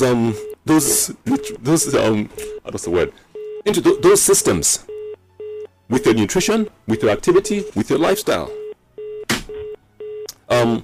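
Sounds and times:
speech: 0:00.0 - 0:05.0, 0:05.9 - 0:08.6, 0:10.5 - 0:10.8
mobile phone beeping electronic tones: 0:00.3 - 0:01.6, 0:03.3 - 0:06.2, 0:06.9 - 0:07.8, 0:08.4 - 0:10.3.

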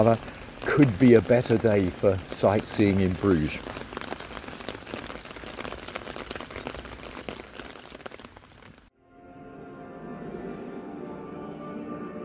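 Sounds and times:
speech: 0:00.0 - 0:03.8
steady rain pouring outdoors in Bruges: 0:00.0 - 0:08.9.

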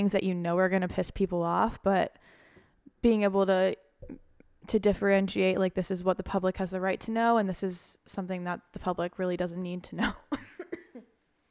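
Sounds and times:
speech: 0:00.0 - 0:02.4, 0:03.0 - 0:10.5
person coughing: 0:10.4 - 0:11.2.

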